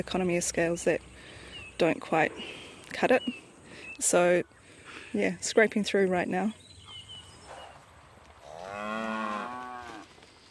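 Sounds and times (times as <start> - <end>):
speech: 0.0 - 3.4, 4.0 - 6.6
beef cattle cow mooing long and loud: 8.4 - 10.1.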